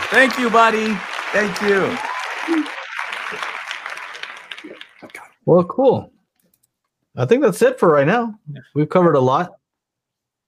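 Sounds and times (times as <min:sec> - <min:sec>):
crowd applause and cheering: 0:00.0 - 0:05.4
speech: 0:00.1 - 0:03.5, 0:05.5 - 0:06.1, 0:07.2 - 0:09.6.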